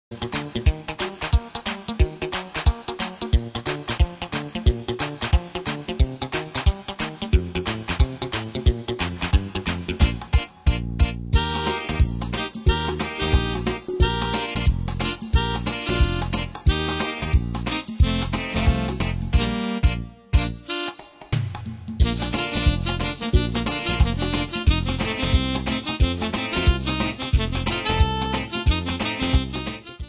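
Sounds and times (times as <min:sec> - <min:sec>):
guitar playing mambo: 0:00.1 - 0:30.0.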